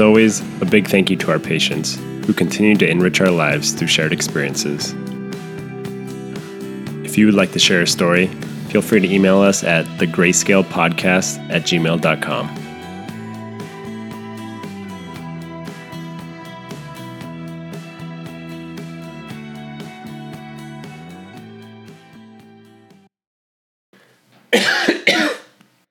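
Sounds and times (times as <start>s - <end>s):
music playing: 0.0s - 23.0s
speech: 0.1s - 5.2s, 7.2s - 12.6s
person coughing after water went down the wrong tube: 24.5s - 25.6s.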